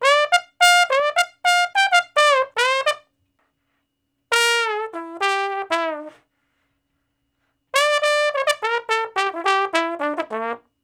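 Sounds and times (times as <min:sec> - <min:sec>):
slow blues trombone solo: 0:00.0 - 0:03.0, 0:04.3 - 0:06.2, 0:07.7 - 0:10.6.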